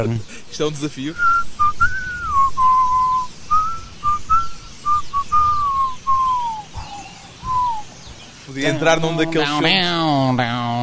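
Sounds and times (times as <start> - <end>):
speech: 0.0 - 1.4, 8.5 - 10.7
lone slow mournful whistled melody: 1.1 - 7.9.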